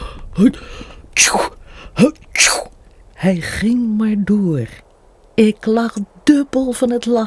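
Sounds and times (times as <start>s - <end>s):
speech: 0.4s - 7.2s
person imitating sneezing: 1.2s - 1.6s, 2.3s - 2.7s.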